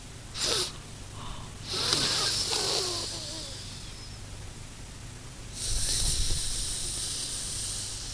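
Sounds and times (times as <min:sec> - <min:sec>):
hissing sniff in a breathing exercise: 0:00.4 - 0:04.0, 0:05.6 - 0:08.1
slow deliberate breathing in a breathing exercise: 0:00.4 - 0:04.0, 0:05.6 - 0:08.1.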